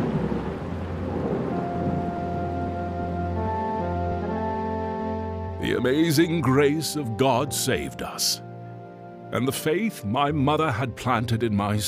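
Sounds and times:
deep thunder rumbling at sea: 0:00.0 - 0:05.4
heavy rain at sea: 0:00.0 - 0:05.6
raging sea waters: 0:00.0 - 0:08.3
speech: 0:05.6 - 0:08.5, 0:09.3 - 0:11.8.

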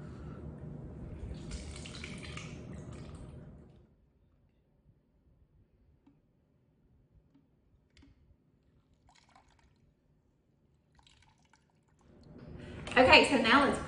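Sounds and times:
drips and small splashes of juice in a pitcher: 0:01.1 - 0:03.9, 0:07.1 - 0:13.0
lemon juice trickling into a pitcher: 0:01.2 - 0:03.8, 0:08.6 - 0:10.2, 0:10.8 - 0:12.3
speech: 0:13.0 - 0:13.8.

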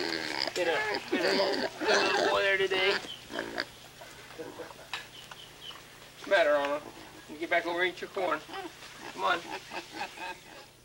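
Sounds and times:
pot-bellied pig grunting and squealing beside a barbecue pit: 0:00.0 - 0:03.8, 0:08.3 - 0:10.7
pot-bellied pig softly snuffling: 0:00.0 - 0:10.7
speech: 0:00.6 - 0:03.8, 0:04.4 - 0:04.8, 0:06.2 - 0:10.7
laughter: 0:04.1 - 0:05.0, 0:09.2 - 0:10.7.

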